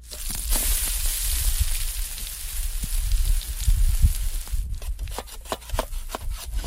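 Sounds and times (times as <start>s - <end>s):
rough outdoor hiss: 0.0s - 4.7s
wood being chopped for a campfire in a cedar grove at Parent Lake: 4.8s - 6.6s.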